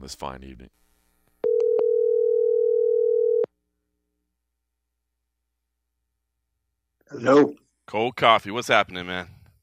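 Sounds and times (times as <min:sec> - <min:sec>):
speech: 0:00.0 - 0:00.9, 0:07.1 - 0:09.4
telephone line clicks: 0:01.4 - 0:02.1
telephone dial tone of an outgoing call to New York: 0:01.4 - 0:03.5.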